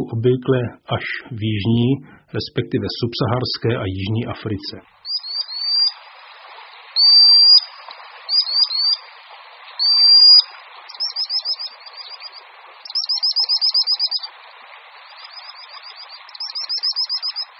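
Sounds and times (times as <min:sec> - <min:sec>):
continuous background hiss: 0:00.0 - 0:17.5
speech: 0:00.1 - 0:05.0
common sandpiper piercing high whistles and trilled runs: 0:05.0 - 0:06.1, 0:06.9 - 0:09.1, 0:09.8 - 0:14.3, 0:15.0 - 0:17.5.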